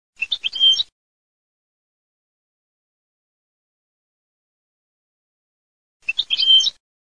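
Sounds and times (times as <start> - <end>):
cardel completo bird singing: 0.2 - 0.9, 6.0 - 6.8.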